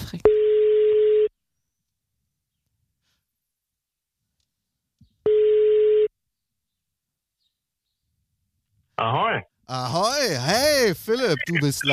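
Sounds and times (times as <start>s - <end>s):
electronic ringback tone heard down a phone line: 0.3s - 1.3s, 5.3s - 6.1s
faint breath: 3.0s - 3.4s
speech: 9.0s - 11.9s.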